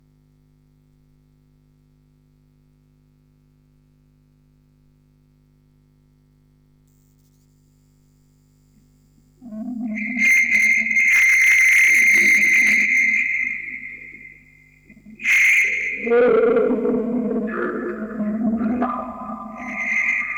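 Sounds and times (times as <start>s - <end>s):
vocoder recorded on tape: 9.4s - 20.3s.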